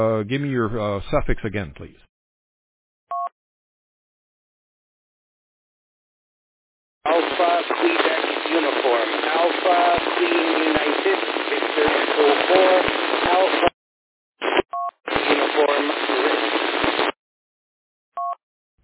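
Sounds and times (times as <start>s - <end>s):
speech: 0.0s - 2.1s
loud hissing radio static: 0.4s - 2.0s, 7.1s - 13.8s, 14.4s - 17.2s
faint voice in weak amateur radio transmission from a mobile station: 7.1s - 13.7s, 15.1s - 16.6s.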